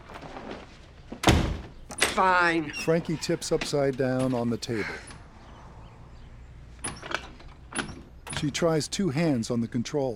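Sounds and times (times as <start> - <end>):
door closing: 1.2 - 2.2
speech: 2.2 - 5.1, 8.4 - 10.1.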